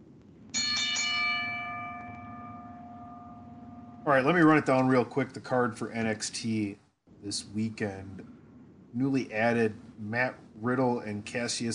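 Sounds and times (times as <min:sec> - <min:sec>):
low steady hum: 0:00.0 - 0:11.7
bell ringing: 0:00.6 - 0:04.1
speech: 0:04.1 - 0:11.7.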